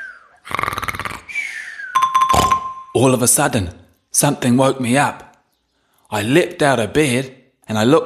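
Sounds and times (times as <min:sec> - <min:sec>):
exaggerated cartoonish snore: 0:00.4 - 0:01.4
speech: 0:02.9 - 0:05.3, 0:06.1 - 0:08.0.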